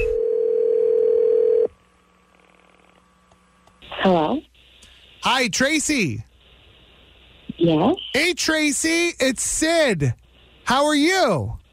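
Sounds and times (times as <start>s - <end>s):
ringback tone from an outgoing prank phone call: 0.0s - 1.7s
speech: 4.0s - 4.5s, 5.2s - 6.3s, 7.6s - 11.6s.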